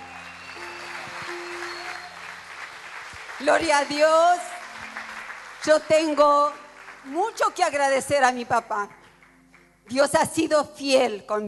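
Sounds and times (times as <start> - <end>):
church audience applauding: 0.0 - 7.8
speech: 3.4 - 4.5, 5.6 - 9.0, 9.9 - 11.4.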